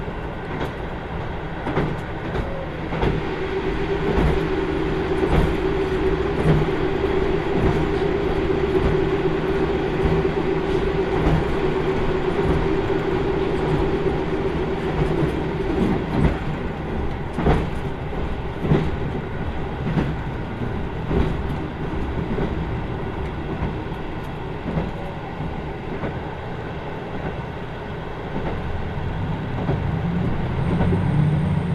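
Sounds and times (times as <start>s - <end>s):
limited express train rumbling on a rural line: 0.0s - 31.7s
sustained tone inside a limited express train: 2.6s - 17.1s.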